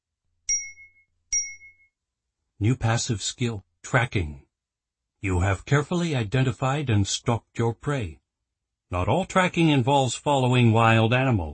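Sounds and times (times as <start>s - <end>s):
bright clean notification chime: 0.5s - 1.9s
speech: 2.6s - 4.4s, 5.2s - 8.2s, 8.9s - 11.5s.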